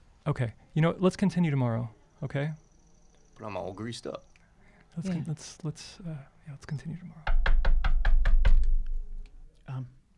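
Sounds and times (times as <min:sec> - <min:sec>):
speech: 0:00.2 - 0:02.6, 0:03.4 - 0:04.3, 0:05.0 - 0:07.4, 0:09.7 - 0:10.0
loud knocks on a door: 0:07.2 - 0:09.1.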